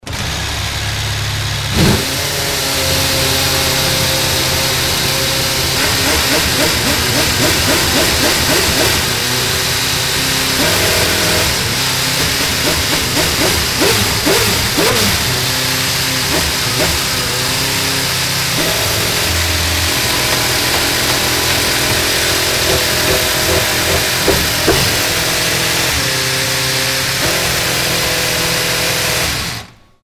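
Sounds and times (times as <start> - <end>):
Formula 1 racing car engine firing up: 0.0 - 30.0.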